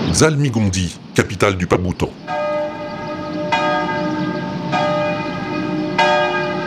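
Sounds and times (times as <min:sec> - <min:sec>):
speech: 0:00.2 - 0:02.2
cathedral church bell striking noon from its tower: 0:02.2 - 0:06.6.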